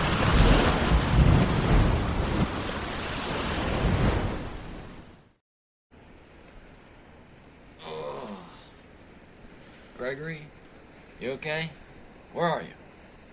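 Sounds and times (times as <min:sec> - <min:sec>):
quieter sloshing water: 0:00.0 - 0:05.0
huge wave crashing over a boat: 0:00.0 - 0:05.2
speech: 0:10.1 - 0:10.6, 0:11.2 - 0:12.8.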